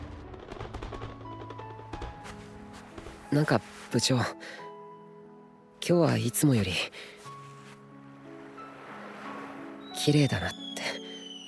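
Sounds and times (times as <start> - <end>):
fireworks bursting: 0.0 - 3.3
speech: 3.3 - 4.6, 5.9 - 7.2, 10.0 - 11.0.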